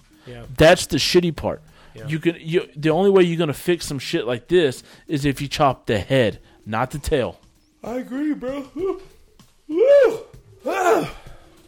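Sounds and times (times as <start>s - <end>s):
speech: 0.2s - 9.1s, 9.7s - 11.2s
person yawning: 9.7s - 11.5s.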